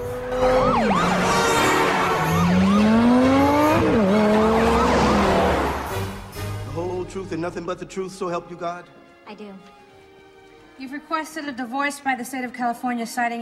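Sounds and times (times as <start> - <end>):
handheld flashing siren wailing: 0.0 - 6.2
speech: 7.5 - 9.8, 10.8 - 13.4.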